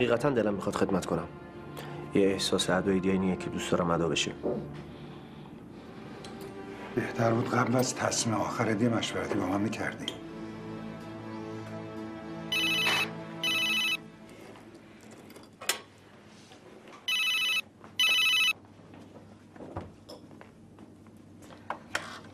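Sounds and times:
speech: 0:00.0 - 0:04.9, 0:07.0 - 0:10.2
telephone ringing with bright buzzy electronic trills: 0:12.5 - 0:14.0, 0:17.1 - 0:18.6.

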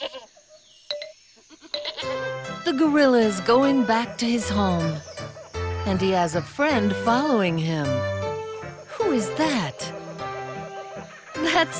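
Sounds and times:
goat bleating: 0:00.0 - 0:00.3, 0:01.5 - 0:02.2
speech: 0:02.0 - 0:05.1, 0:05.8 - 0:08.2, 0:09.2 - 0:10.0, 0:11.6 - 0:11.7.

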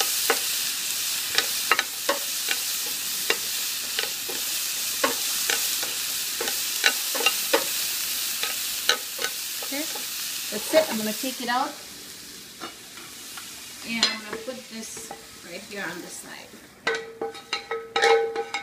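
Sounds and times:
onions frying in a pan on a gas cooker over medium heat: 0:00.0 - 0:18.6
speech: 0:10.7 - 0:11.9, 0:13.9 - 0:17.1.

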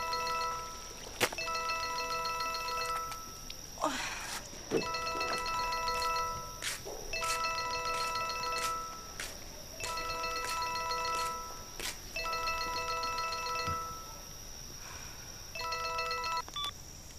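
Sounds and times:
telephone ringing with a bright electronic trill: 0:00.0 - 0:03.4, 0:04.8 - 0:06.6, 0:07.2 - 0:09.2, 0:09.8 - 0:14.1, 0:15.6 - 0:16.5.

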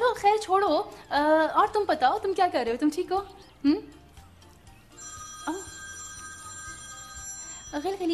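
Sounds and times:
speech: 0:00.4 - 0:04.0, 0:07.7 - 0:08.1
mobile phone ringtone: 0:04.4 - 0:08.1.

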